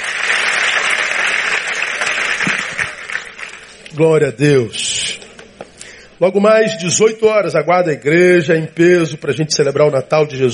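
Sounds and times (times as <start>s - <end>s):
large congregation applauding: 0.0s - 4.0s
speech: 4.0s - 4.9s, 6.2s - 10.5s.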